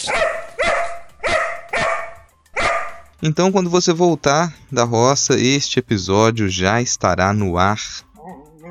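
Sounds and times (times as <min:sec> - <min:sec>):
hurried dog barking: 0:00.0 - 0:03.1
speech: 0:03.2 - 0:08.1.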